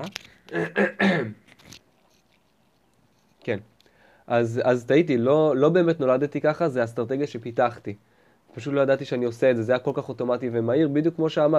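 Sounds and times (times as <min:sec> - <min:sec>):
speech: 0:00.0 - 0:01.4, 0:03.4 - 0:03.7, 0:04.3 - 0:11.5
small throaty coughs: 0:00.5 - 0:01.5.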